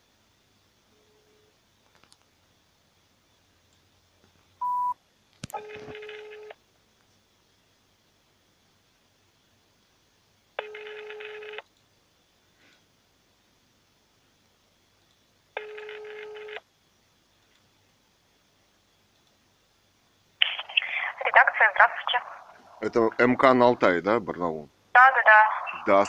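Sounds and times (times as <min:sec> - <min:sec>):
low hiss: 0:00.0 - 0:05.6, 0:06.5 - 0:10.7, 0:11.5 - 0:15.6, 0:16.6 - 0:26.0
telephone ringback tones on a call to a newspaper office: 0:04.6 - 0:04.9, 0:05.6 - 0:06.5, 0:10.6 - 0:11.6, 0:15.6 - 0:16.6
telephone dialling beep: 0:04.6 - 0:05.0
speech: 0:21.6 - 0:26.0.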